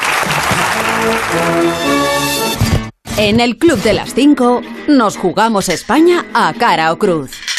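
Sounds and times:
many hands clapping in applause: 0.0 - 2.3
speech: 1.0 - 2.6, 3.2 - 7.4.

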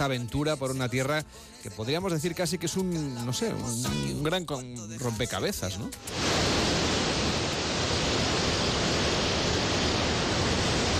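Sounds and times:
speech: 0.0 - 6.5
sea waves washing at Pulpí in Almería Spain: 6.0 - 10.9.

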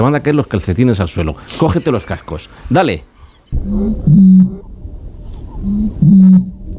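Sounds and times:
speech: 0.0 - 4.6
bird of the year 2024 giving a deep booming call: 3.4 - 6.6.

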